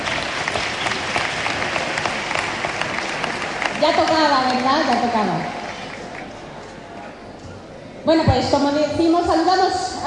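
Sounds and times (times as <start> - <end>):
audience applause at a festival opening ceremony: 0.0 - 6.5
speech: 3.8 - 5.6, 8.1 - 9.9.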